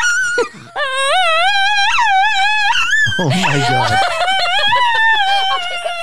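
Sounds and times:
dog howling in long wavering sing-song tones: 0.0 - 6.0
speech: 0.4 - 0.8
person exclaiming: 3.1 - 4.1
laughter: 3.1 - 6.0.

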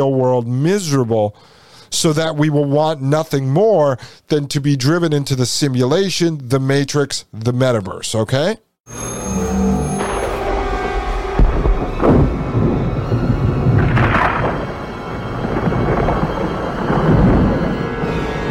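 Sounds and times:
speech: 0.0 - 9.4
thunder rumbling in a storm: 9.3 - 18.4.

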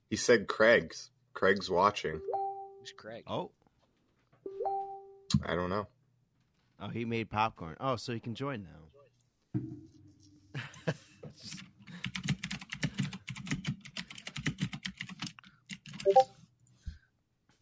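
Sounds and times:
speech: 0.1 - 3.6, 5.3 - 5.9, 6.8 - 9.8
typing on a computer keyboard: 12.0 - 16.3.

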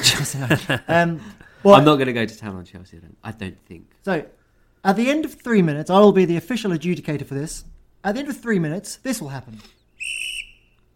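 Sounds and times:
laughter: 0.0 - 1.2
speech: 0.1 - 10.2
shrill referee's whistle blast: 10.0 - 10.8.

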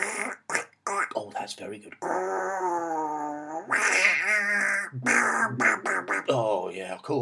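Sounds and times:
person imitating menacing duck quacks: 0.0 - 1.2, 2.0 - 6.5
speech: 1.1 - 7.2.

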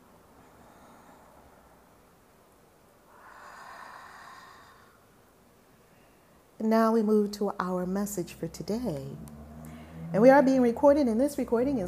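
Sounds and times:
deep breathing: 0.3 - 2.0, 3.1 - 5.2, 9.5 - 10.2
speech: 6.6 - 9.4, 10.1 - 11.8.

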